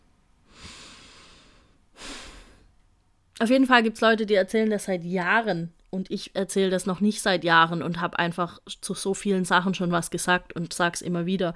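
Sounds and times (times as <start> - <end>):
person taking a long deep breath in and out: 0.4 - 2.7
speech: 3.4 - 11.5.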